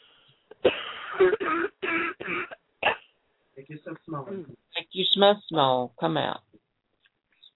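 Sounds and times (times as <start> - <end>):
deep harsh coughing: 0.5 - 3.0
speech: 1.2 - 1.7, 3.7 - 6.5.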